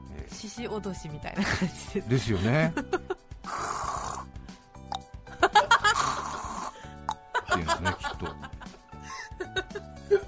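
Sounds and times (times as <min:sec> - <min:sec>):
speech: 0:00.2 - 0:03.2
laughter: 0:01.4 - 0:03.2, 0:05.4 - 0:06.4, 0:07.3 - 0:10.2
person imitating a husband's snoring: 0:03.4 - 0:04.4, 0:05.9 - 0:06.9.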